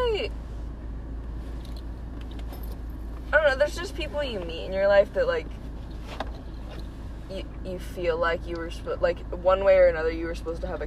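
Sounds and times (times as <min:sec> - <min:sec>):
faulty car engine idling outside: 0:00.0 - 0:10.8
faint metallic rattles and clinks: 0:01.6 - 0:03.1
speech: 0:03.5 - 0:06.2, 0:07.3 - 0:10.8.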